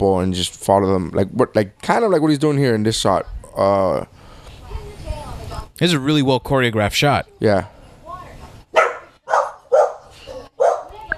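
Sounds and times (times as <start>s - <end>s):
speech: 0.0s - 4.2s, 5.8s - 7.7s
dog barking: 8.7s - 11.0s.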